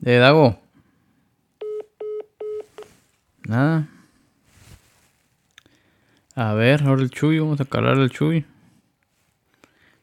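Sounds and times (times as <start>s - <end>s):
speech: 0.0s - 0.6s, 3.5s - 3.9s, 6.4s - 8.5s
mobile phone electronic keypad tones: 1.6s - 2.9s.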